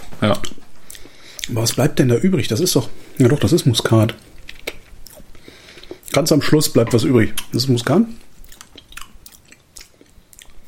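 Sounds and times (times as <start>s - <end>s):
speech: 0.2s - 0.6s, 1.5s - 4.3s, 6.2s - 8.2s
wet noisy chewing with small crunches: 0.2s - 10.6s
lip smacking: 0.4s - 1.8s, 3.9s - 6.3s, 8.4s - 10.6s.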